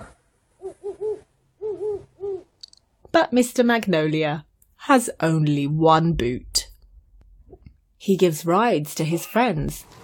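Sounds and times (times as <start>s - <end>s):
owl hooting: 0.0s - 2.6s
speech: 3.2s - 6.5s, 8.0s - 10.0s.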